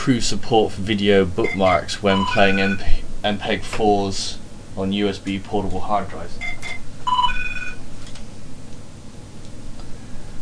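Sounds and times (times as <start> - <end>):
speech: 0.0 - 6.5
low hum: 0.0 - 10.4
electronic telephone ring: 6.4 - 7.8.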